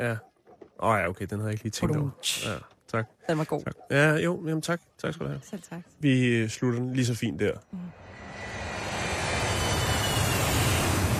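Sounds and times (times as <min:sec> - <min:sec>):
speech: 0:00.0 - 0:08.0
airplane engine roaring while flying in to land: 0:07.9 - 0:11.1.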